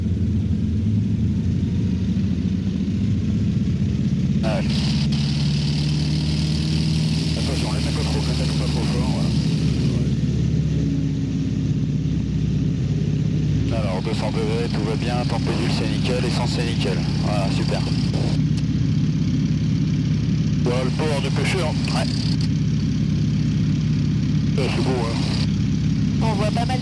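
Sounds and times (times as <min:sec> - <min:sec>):
light airplane engine at full power for takeoff: 0:00.0 - 0:26.8
speech: 0:14.3 - 0:18.4, 0:20.6 - 0:22.5, 0:24.6 - 0:25.4, 0:26.3 - 0:26.8.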